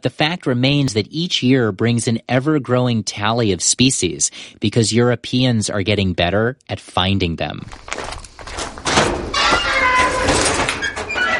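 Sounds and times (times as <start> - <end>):
speech: 0.0 - 8.2
garage door swinging open: 8.0 - 11.3
garage door metal hinges squealing: 8.8 - 11.3.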